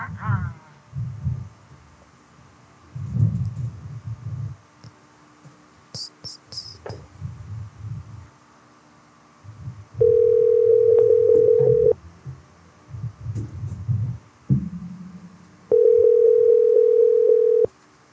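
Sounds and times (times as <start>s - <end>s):
faint low rumbling: 0.0s - 4.9s, 6.5s - 17.7s
phone ringback tone before voicemail: 10.0s - 12.0s, 15.7s - 17.7s.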